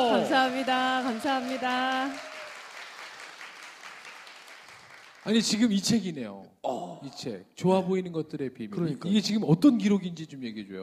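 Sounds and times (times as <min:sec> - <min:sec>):
speech: 0:00.0 - 0:02.3, 0:05.2 - 0:10.8
room full of people applauding: 0:00.0 - 0:05.6.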